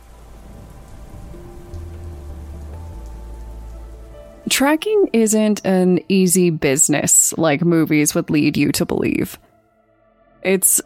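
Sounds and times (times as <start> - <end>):
low rumble: 0.0 - 4.4
rain pouring: 0.0 - 7.1
speech: 4.5 - 9.5, 10.4 - 10.8.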